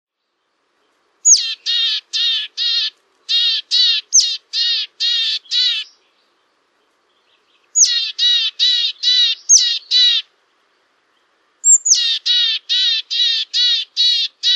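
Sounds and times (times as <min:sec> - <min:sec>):
willow tit alarm calls: 0:01.2 - 0:06.0, 0:07.7 - 0:10.3, 0:11.6 - 0:14.5.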